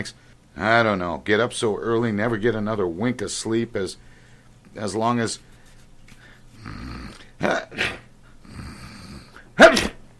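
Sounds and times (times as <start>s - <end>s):
speech: 0.0s - 4.1s, 4.7s - 5.5s, 6.6s - 8.0s
man sneezing: 7.3s - 8.1s, 9.3s - 10.1s.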